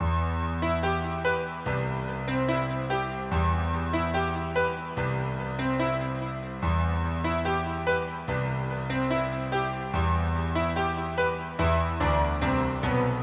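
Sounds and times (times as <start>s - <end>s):
piano playing: 0.0s - 13.2s.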